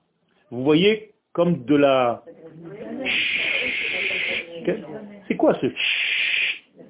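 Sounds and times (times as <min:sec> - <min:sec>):
speech: 0:00.5 - 0:06.0
untuned television static hiss: 0:00.6 - 0:06.8.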